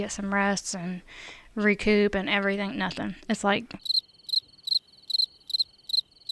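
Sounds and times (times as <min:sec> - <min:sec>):
speech: 0:00.0 - 0:04.0
crickets chirping sound effect: 0:03.8 - 0:06.3.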